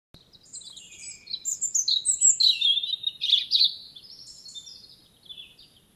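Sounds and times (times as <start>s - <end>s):
European robin Erithacus rubecula singing: 0.2s - 5.9s.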